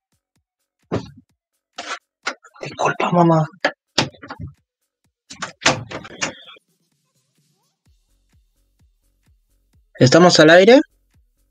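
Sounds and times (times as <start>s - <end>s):
speech: 2.7s - 3.6s, 10.0s - 10.9s
door closing with clunks, rattles and thumps: 5.3s - 6.5s.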